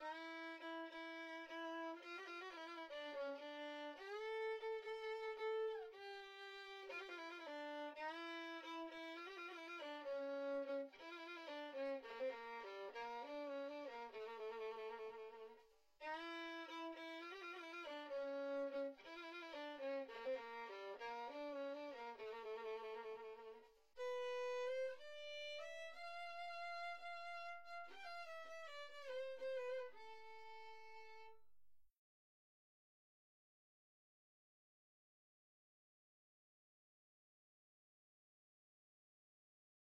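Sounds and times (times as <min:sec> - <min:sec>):
cello: 0:00.0 - 0:31.4.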